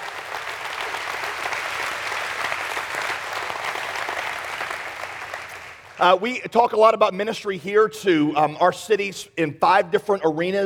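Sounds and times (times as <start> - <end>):
large crowd applauding: 0.0 - 6.1
speech: 6.0 - 10.6.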